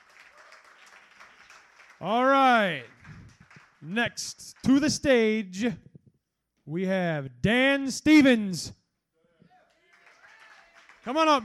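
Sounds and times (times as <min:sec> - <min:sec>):
audience applause: 0:00.0 - 0:04.8, 0:09.6 - 0:11.4
speech: 0:02.0 - 0:03.0, 0:03.8 - 0:05.9, 0:06.7 - 0:08.8, 0:11.1 - 0:11.4.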